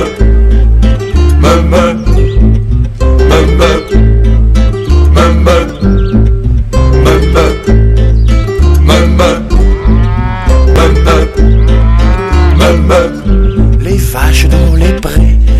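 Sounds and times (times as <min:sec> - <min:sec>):
steady thumping musical backing: 0:00.0 - 0:15.5
cow mooing with sliding pitch: 0:08.8 - 0:13.2.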